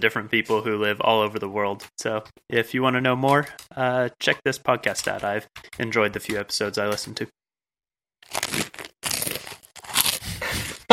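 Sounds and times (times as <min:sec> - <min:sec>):
speech: 0:00.0 - 0:07.4
crunching breakfast cereal being chewed: 0:08.2 - 0:10.9.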